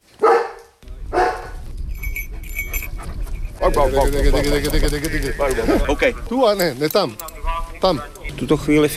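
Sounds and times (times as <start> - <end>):
outdoor noise in the Krkonoše mountains: 0.0 - 8.9
search and rescue dog barking during mountain rescue training: 0.2 - 1.6
speech: 3.6 - 8.9.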